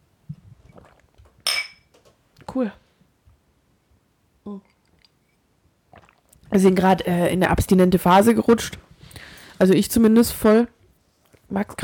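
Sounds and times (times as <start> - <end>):
glasses clinking in a toast: 1.4 - 1.9
speech: 2.6 - 2.8, 6.6 - 8.9, 9.6 - 10.8, 11.5 - 11.8.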